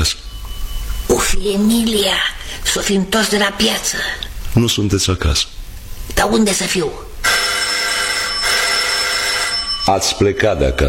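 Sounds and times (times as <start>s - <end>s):
speech: 0.0s - 0.2s, 1.1s - 7.1s, 9.8s - 10.8s
shrill electric doorbell ringing: 7.2s - 10.8s.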